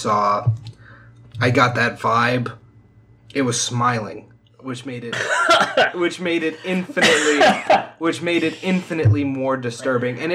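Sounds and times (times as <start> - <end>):
speech: 0.0 - 0.6, 1.4 - 2.6, 3.3 - 10.3
person coughing: 5.1 - 6.0, 6.6 - 8.8
laughter: 5.2 - 8.8, 9.7 - 10.3.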